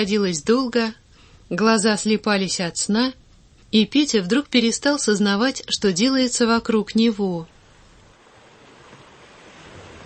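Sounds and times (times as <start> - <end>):
speech: 0.0 - 7.5
small waves splashing around a sailboat: 7.5 - 10.0.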